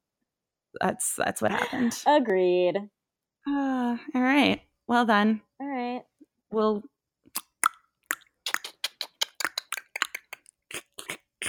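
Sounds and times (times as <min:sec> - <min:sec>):
speech: 0:00.7 - 0:06.9
wet slurping with smacking plops and sucks: 0:07.4 - 0:11.4.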